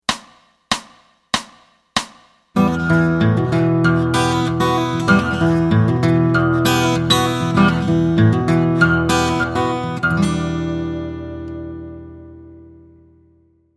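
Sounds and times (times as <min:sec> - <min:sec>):
E minor open chords played with fingers: 0:02.6 - 0:13.0.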